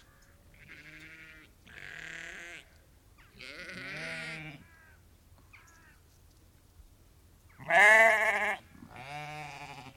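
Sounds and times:
lamb bleating: 0:00.6 - 0:02.7, 0:03.3 - 0:05.0, 0:07.6 - 0:09.9.

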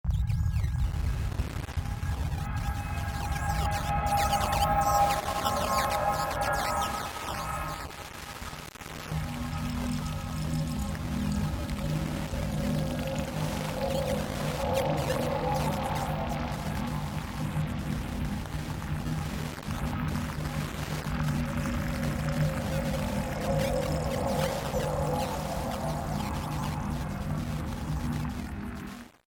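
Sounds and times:
sci-fi alien transmission static radio signal distortion: 0:00.1 - 0:29.2.

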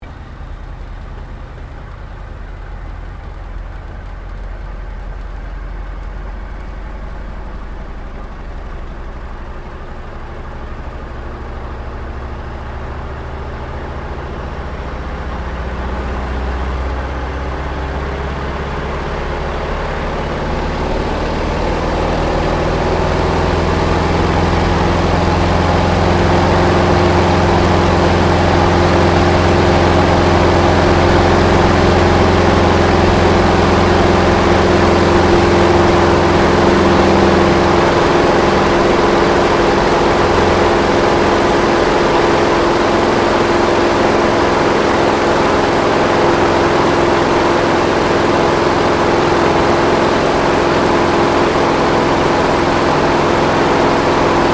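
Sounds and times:
T-28D Trojan aircraft takeoff heard from the interior: 0:00.0 - 0:54.5.

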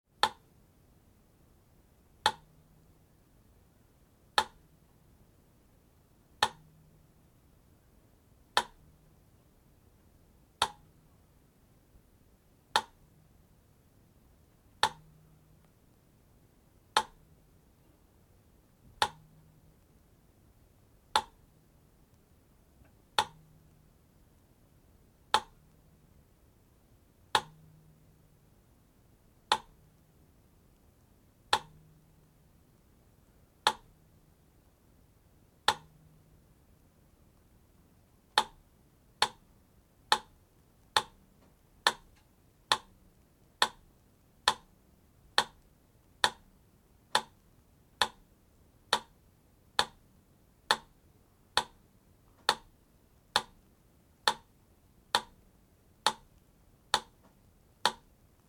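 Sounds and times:
mechanical metronome ticking at 4 speeds: 0:00.2 - 0:00.6, 0:02.2 - 0:02.6, 0:04.4 - 0:04.8, 0:06.3 - 0:06.9, 0:08.4 - 0:09.1, 0:10.5 - 0:11.2, 0:12.6 - 0:13.1, 0:14.7 - 0:15.7, 0:16.8 - 0:17.5, 0:18.8 - 0:19.9, 0:21.0 - 0:22.2, 0:22.8 - 0:24.4, 0:25.2 - 0:25.9, 0:27.2 - 0:28.5, 0:29.4 - 0:30.1, 0:31.5 - 0:32.3, 0:33.5 - 0:34.1, 0:35.6 - 0:36.4, 0:38.2 - 0:48.3, 0:48.9 - 0:51.0, 0:51.6 - 0:57.2, 0:57.8 - 0:58.2.

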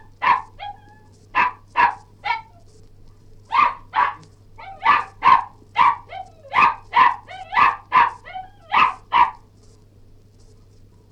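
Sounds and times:
Cairn terrier barking and yelping: 0:00.0 - 0:02.7, 0:03.5 - 0:09.5.

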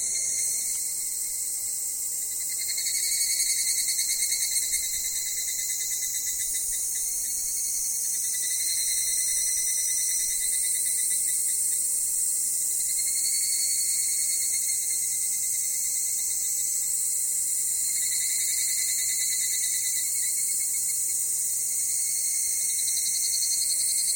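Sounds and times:
summer insect chorus buzzing at Takao: 0:00.0 - 0:24.1.

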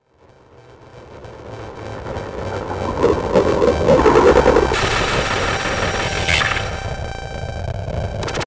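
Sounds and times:
digital filter static glitches: 0:02.5 - 0:08.4.

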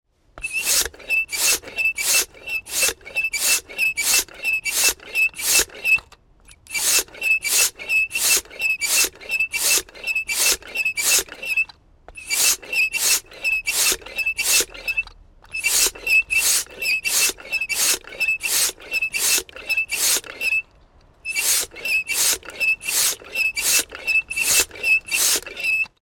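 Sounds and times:
squeaky foot pump pumping up a tyre: 0:00.4 - 0:26.0.

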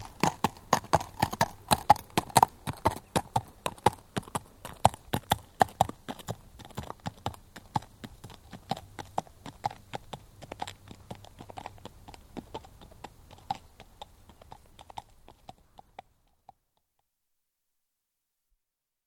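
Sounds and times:
horse hooves clopping at a walk on tarmac: 0:00.0 - 0:16.6.

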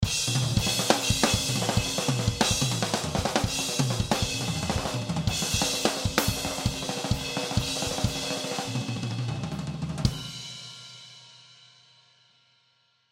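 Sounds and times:
short drum kit solo: 0:00.0 - 0:11.8.

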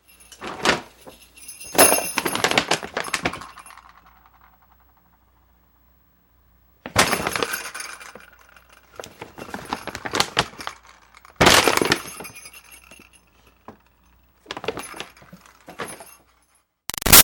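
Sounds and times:
jingle bells moving: 0:00.0 - 0:05.2, 0:07.0 - 0:16.4
paper shopping bag moving: 0:00.2 - 0:03.9, 0:06.9 - 0:08.2, 0:08.9 - 0:13.0, 0:14.5 - 0:16.2.

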